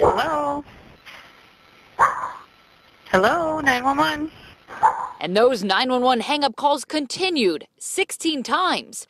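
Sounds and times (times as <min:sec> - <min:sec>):
dog barking: 0:00.0 - 0:00.3, 0:02.0 - 0:02.5, 0:04.7 - 0:05.2
speech: 0:03.1 - 0:09.0.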